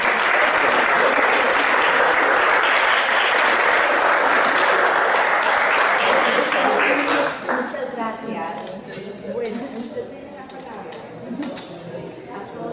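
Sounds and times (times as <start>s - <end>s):
sustained applause from a sizable audience: 0.0s - 7.8s.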